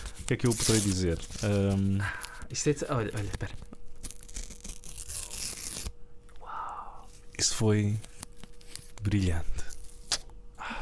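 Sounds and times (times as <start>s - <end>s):
sheet of paper being ripped: 0.0s - 1.8s, 2.8s - 5.9s, 8.0s - 9.1s
speech: 0.3s - 3.8s, 7.4s - 8.1s, 9.0s - 9.6s.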